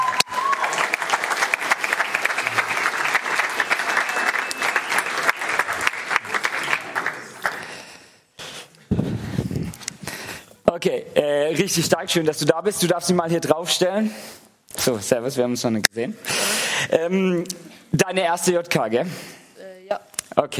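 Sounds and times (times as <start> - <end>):
crowd applauding for a volunteer: 0.0 - 7.9
speech: 10.8 - 19.4, 20.4 - 20.5.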